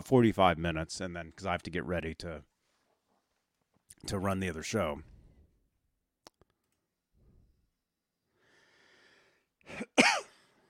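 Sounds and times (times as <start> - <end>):
speech: 0.1 - 2.5, 4.0 - 5.1
person coughing harshly: 9.6 - 10.5.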